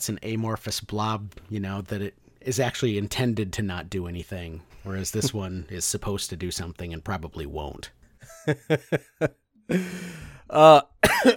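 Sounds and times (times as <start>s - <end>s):
speech: 0.0s - 11.3s
person chuckling: 8.2s - 10.2s
person raspy breathy coughing: 11.0s - 11.3s.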